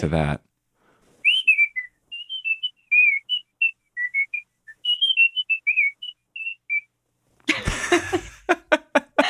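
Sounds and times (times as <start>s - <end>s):
speech: 0.0s - 0.5s
person whistling a brisk marching band tune: 1.2s - 6.9s
person laughing: 7.5s - 9.2s.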